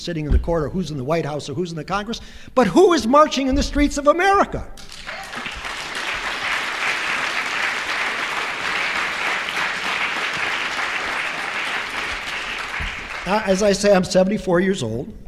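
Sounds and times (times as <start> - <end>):
speech: 0.0 - 5.2, 13.3 - 15.2
sustained applause from a large audience: 4.8 - 13.9.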